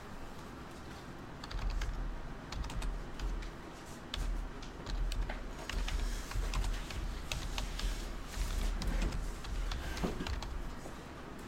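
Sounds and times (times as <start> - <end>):
typing on a computer keyboard: 1.4 - 3.5, 4.1 - 10.7.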